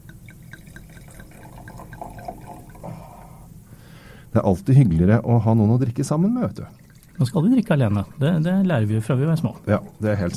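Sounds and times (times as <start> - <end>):
wine pouring from a Uruguayan bottle: 0.0 - 3.4, 6.3 - 8.6, 9.5 - 10.3
speech: 4.4 - 10.3.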